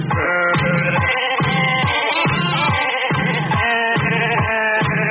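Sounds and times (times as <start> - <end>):
sheep bleating in a bouncing rhythm on a novelty record: 0.1 - 5.0.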